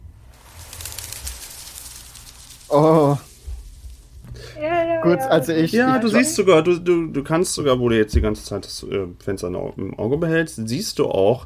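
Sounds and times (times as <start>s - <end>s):
bird sound effect with fluttering airy rush: 0.3s - 4.3s
speech: 2.7s - 3.2s, 5.1s - 11.4s.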